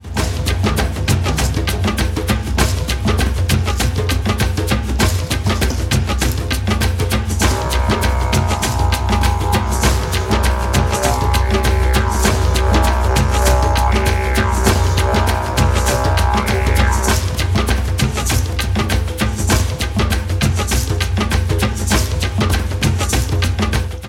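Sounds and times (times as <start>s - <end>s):
shamanic frame drum: 0.0s - 24.0s
jaw harp: 7.4s - 17.4s.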